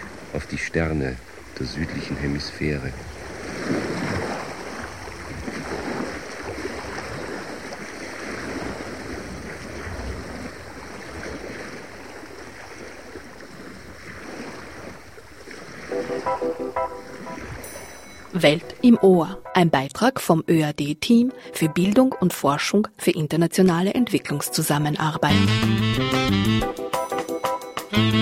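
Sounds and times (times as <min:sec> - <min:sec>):
gentle sea waves splashing against a ship hull among reefs: 0:00.0 - 0:19.4
speech: 0:00.3 - 0:03.8, 0:18.4 - 0:26.8.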